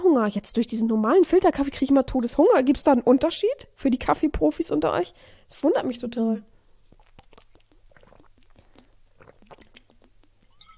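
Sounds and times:
speech: 0.2s - 6.5s
stomach rumbling and gurgling: 6.9s - 10.7s.

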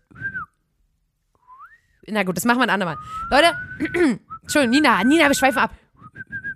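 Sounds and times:
person whistling with breathy air: 0.0s - 0.6s, 1.4s - 2.0s, 2.9s - 6.5s
speech: 2.1s - 5.8s.

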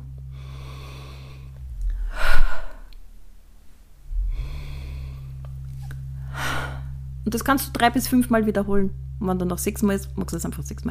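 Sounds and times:
low steady hum: 0.0s - 10.9s
deliberate deep breath drawn in through the nose during a guided breathing exercise: 0.3s - 3.0s, 4.1s - 5.5s
speech: 7.3s - 10.9s.

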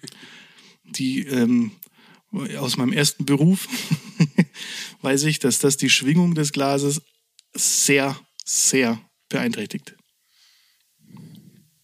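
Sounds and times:
heavy breath blown into a microphone: 0.1s - 0.9s, 4.5s - 5.0s, 10.2s - 11.8s
speech: 0.9s - 4.0s, 5.0s - 10.0s.

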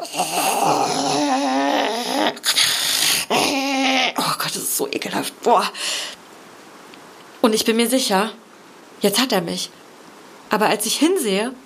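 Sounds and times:
creature's sharp gasping breaths: 0.0s - 3.9s
harsh raspy creature screaming: 0.0s - 4.2s
speech: 0.2s - 1.0s, 4.8s - 6.0s, 7.4s - 8.4s, 9.0s - 9.8s, 10.5s - 11.6s.

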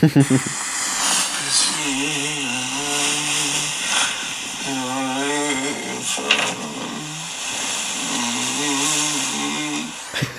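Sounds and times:
laughter: 0.0s - 0.6s, 1.4s - 7.1s, 10.1s - 10.3s
speech: 0.0s - 0.6s
constant hiss of noise: 0.0s - 10.3s
person humming and singing in sleep recording: 1.6s - 7.3s, 8.0s - 10.3s.

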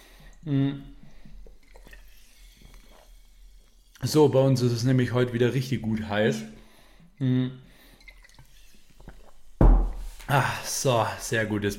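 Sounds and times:
person sipping water with a brief gulp and soft voiced hum: 0.0s - 4.0s, 7.0s - 10.3s
speech: 0.4s - 0.9s, 4.0s - 6.6s, 7.2s - 7.7s, 10.3s - 11.7s.

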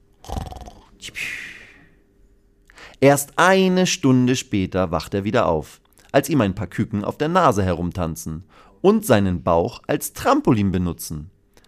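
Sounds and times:
light snoring: 0.2s - 1.0s
speech: 1.0s - 1.4s, 3.0s - 11.3s.

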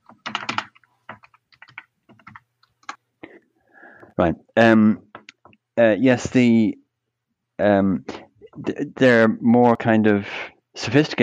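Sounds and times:
computer keyboard typing as a password is entered: 0.0s - 3.0s
speech: 4.2s - 5.0s, 5.8s - 6.8s, 7.6s - 11.2s.

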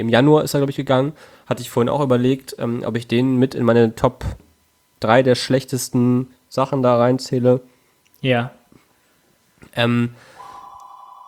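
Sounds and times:
speech: 0.0s - 4.4s, 5.0s - 8.6s, 9.7s - 10.3s
steady electronic telephone tone: 10.4s - 11.2s
telephone ringing: 10.4s - 11.2s.

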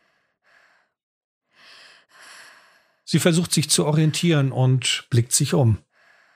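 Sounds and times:
woman panting heavily after running: 0.0s - 3.0s
speech: 3.1s - 5.9s.

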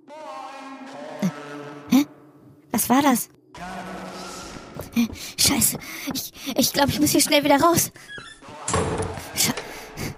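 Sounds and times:
speech: 2.9s - 3.8s, 5.0s - 8.2s
house door slamming shut: 8.5s - 9.3s.

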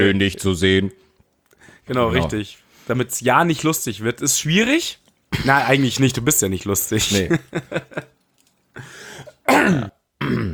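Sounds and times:
speech: 0.0s - 1.1s, 1.9s - 8.2s, 8.8s - 10.5s
laughter: 7.0s - 8.2s
person coughing: 9.2s - 10.5s
person clearing throat roughly: 9.4s - 10.5s.

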